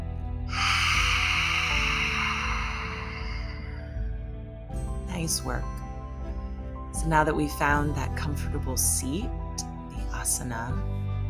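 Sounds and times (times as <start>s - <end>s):
soft music: 0.0s - 11.2s
forceful exhale with tongue out during a yoga breathing exercise: 0.5s - 4.1s
speech: 5.2s - 5.8s, 7.0s - 9.4s, 10.2s - 11.0s.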